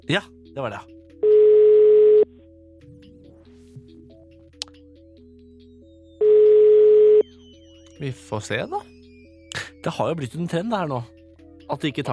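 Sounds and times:
speech: 0:00.0 - 0:01.0, 0:08.0 - 0:09.0, 0:09.8 - 0:12.1
faint soft melody: 0:00.0 - 0:12.1
phone ringback tone: 0:01.2 - 0:02.3, 0:06.2 - 0:07.3.

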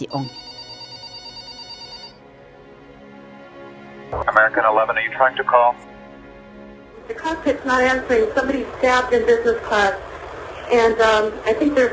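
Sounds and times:
speech: 0:00.0 - 0:00.4, 0:04.1 - 0:05.9, 0:07.1 - 0:10.1, 0:10.7 - 0:11.9
old-style telephone bell ringing in rapid pulses: 0:00.0 - 0:02.5.

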